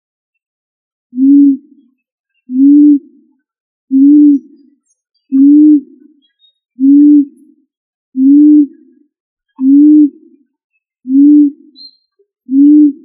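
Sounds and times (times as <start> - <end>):
pigeon cooing: 1.2 - 1.8, 2.5 - 3.2, 3.9 - 4.6, 5.4 - 6.0, 6.8 - 7.4, 8.2 - 8.8, 9.6 - 10.2, 11.1 - 11.9, 12.5 - 13.0.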